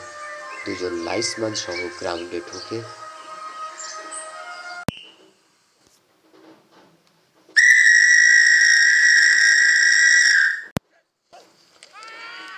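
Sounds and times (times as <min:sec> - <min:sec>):
speech: 0:00.6 - 0:03.0
referee's whistle blown hard at the start of a match: 0:07.6 - 0:10.7.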